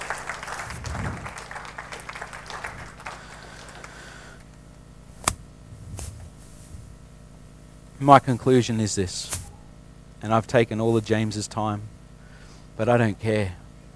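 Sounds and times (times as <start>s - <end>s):
audience applause: 0.0s - 4.7s
speech: 8.0s - 9.4s, 10.2s - 12.0s, 12.8s - 13.6s.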